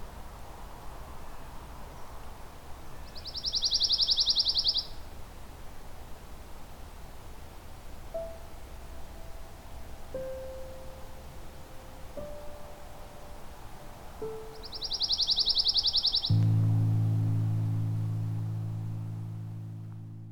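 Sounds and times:
outdoor noise: 0.0s - 20.3s
ovenbird singing: 2.9s - 5.1s, 8.2s - 17.7s.

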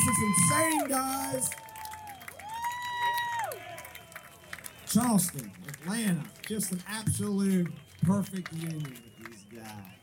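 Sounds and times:
speech: 0.0s - 1.7s, 4.9s - 10.0s
loud sustained whoop from an audience at a charity fundraising event: 0.0s - 4.3s
audience applauding at a charity fundraising event: 0.0s - 10.0s.

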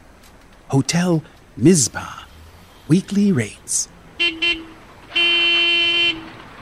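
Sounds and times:
city noise: 0.0s - 6.6s
speech: 0.7s - 2.2s, 2.9s - 4.0s
vehicle horn honking: 4.2s - 6.4s.

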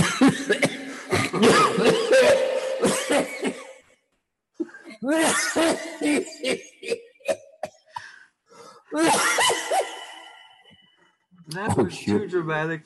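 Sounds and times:
person coughing: 0.0s - 3.8s, 4.6s - 8.2s, 9.0s - 10.0s
speech: 12.0s - 12.8s.

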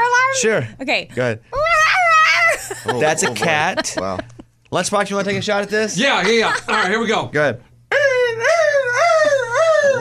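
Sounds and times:
speech: 0.4s - 1.6s, 2.8s - 7.7s
laughter: 2.5s - 4.5s, 6.1s - 7.1s
person imitating a hurt puppy with nasal whimpers: 7.9s - 9.9s.

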